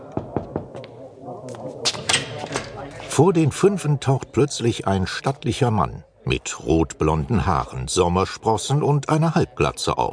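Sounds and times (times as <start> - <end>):
faint murmuring: 0.0 - 10.1
knocking on a door: 0.1 - 0.8
speech: 2.9 - 10.1.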